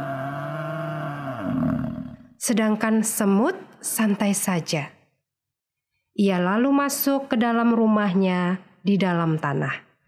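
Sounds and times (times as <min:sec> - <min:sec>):
angry lion roaring: 0:00.0 - 0:02.3
speech: 0:02.4 - 0:05.0, 0:06.2 - 0:09.9.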